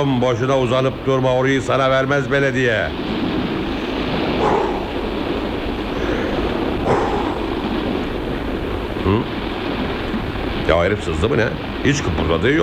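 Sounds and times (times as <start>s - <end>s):
speech: 0.0s - 3.2s, 9.1s - 9.4s, 10.7s - 12.6s
roar of wind: 0.0s - 12.6s
surf: 0.0s - 12.6s
dog barking: 4.3s - 5.2s, 6.8s - 7.6s.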